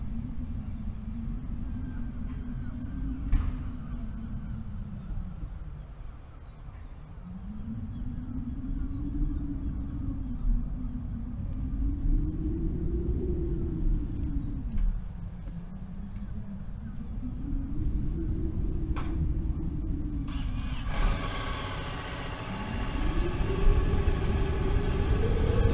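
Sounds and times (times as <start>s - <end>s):
strong wind roaring: 0.0s - 25.7s.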